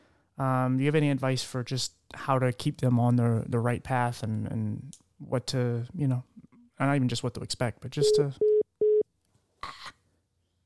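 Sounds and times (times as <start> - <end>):
speech: 0.4 - 8.5
telephone busy tone beep: 8.0 - 9.0.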